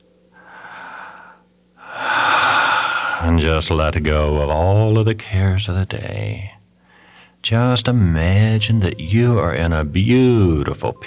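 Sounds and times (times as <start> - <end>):
deep breath with slow inhale and long exhale: 0.4 - 3.3, 6.8 - 7.4
speech: 3.2 - 6.6, 7.4 - 11.0.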